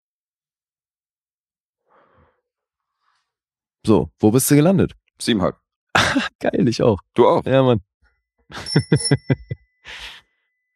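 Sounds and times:
speech: 3.8 - 7.9, 8.5 - 10.2
bell ringing: 8.5 - 9.6.

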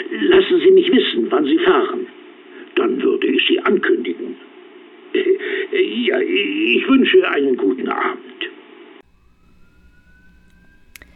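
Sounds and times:
speech: 0.0 - 2.1, 2.8 - 4.3, 5.1 - 8.4
low traffic rumble: 9.0 - 11.1
police siren wailing: 9.0 - 11.1.

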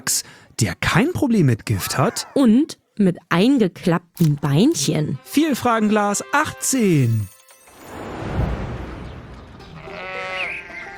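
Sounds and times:
speech: 0.0 - 7.4
sheep bleating loudly: 9.7 - 10.9.

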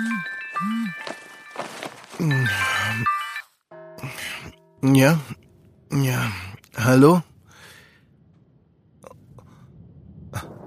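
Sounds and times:
telephone ringing with bright electronic tones: 0.0 - 3.5
speech: 2.2 - 3.1, 4.8 - 7.3.

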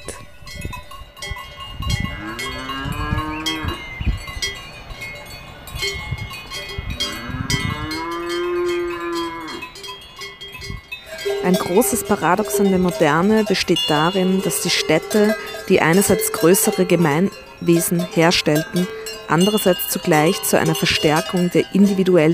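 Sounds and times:
cowbells clanging on grazing cows: 0.0 - 22.3
grazing cow mooing: 2.1 - 3.8, 7.0 - 9.6, 11.2 - 22.0
speech: 11.7 - 22.3.

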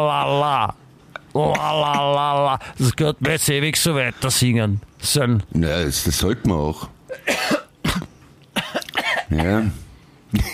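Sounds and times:
speech: 0.0 - 7.5, 9.3 - 10.5
person coughing harshly: 1.4 - 2.1, 7.1 - 10.5.

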